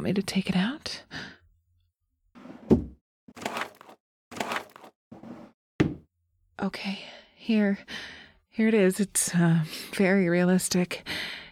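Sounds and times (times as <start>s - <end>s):
speech: 0.0s - 1.3s, 6.6s - 11.4s
nightstand drawer sliding scrapes: 2.4s - 5.6s
top drawer of a nightstand being opened: 2.5s - 3.0s.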